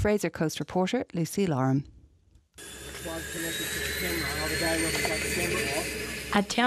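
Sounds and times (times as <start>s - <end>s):
speech: 0.0s - 1.9s, 2.6s - 6.6s
small plane engine running before takeoff at an airport: 2.6s - 6.5s
voices talking faintly: 3.0s - 6.6s.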